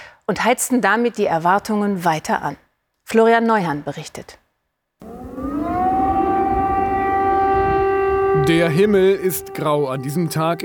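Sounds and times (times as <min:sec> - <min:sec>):
speech: 0:00.3 - 0:04.4, 0:08.4 - 0:10.6
air-raid siren wailing in wartime Kyiv: 0:05.0 - 0:10.6.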